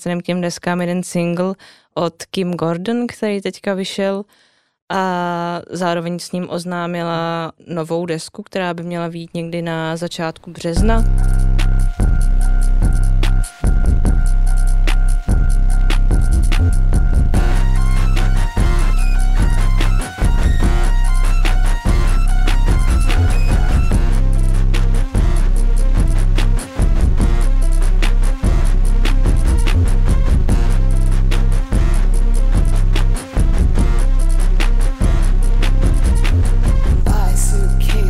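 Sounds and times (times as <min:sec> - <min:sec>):
speech: 0:00.0 - 0:12.0
heavy droning bass: 0:10.8 - 0:38.0
tense jittery electronic beat: 0:10.8 - 0:38.0.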